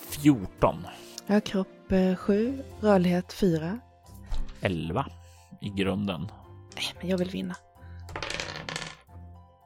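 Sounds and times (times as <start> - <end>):
speech: 0.2 - 3.9, 4.6 - 7.7
pair of dice clattering across a hard tabletop: 8.1 - 9.1.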